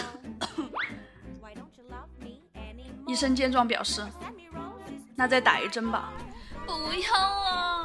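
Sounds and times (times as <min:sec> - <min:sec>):
person deliberately fake coughing: 0:00.4 - 0:00.8
speech: 0:03.1 - 0:04.4, 0:05.2 - 0:07.7.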